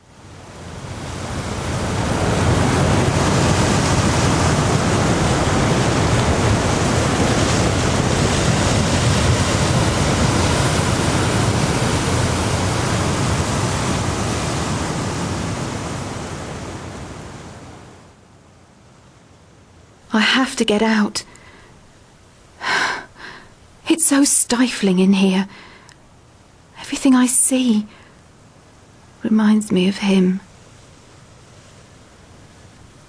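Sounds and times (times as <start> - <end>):
ocean waves crashing against rocks: 0.2 - 17.7
speech: 20.2 - 21.4, 24.0 - 25.7, 26.9 - 28.0, 29.2 - 30.5.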